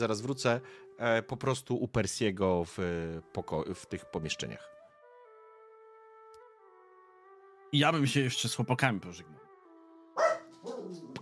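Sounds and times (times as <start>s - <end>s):
speech: 0.0s - 4.8s, 7.7s - 9.5s
dog yapping and barking: 10.2s - 11.2s.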